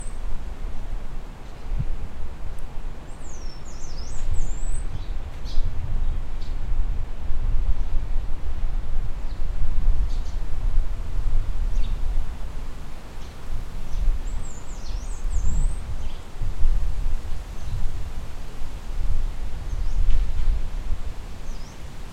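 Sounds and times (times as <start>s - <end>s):
wind: 0.0s - 22.1s
birds singing: 3.1s - 5.7s, 13.2s - 16.4s, 19.7s - 20.5s, 21.4s - 21.9s.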